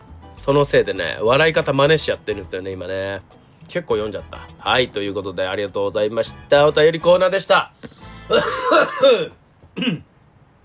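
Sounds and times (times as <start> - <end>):
speech: 0.4 - 10.1
person with a sore throat coughing: 8.2 - 10.2.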